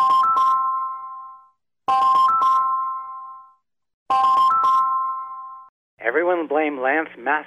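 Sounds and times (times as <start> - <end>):
T-Mobile cell phone ringtone: 0.0 - 5.7
speech: 6.1 - 7.4.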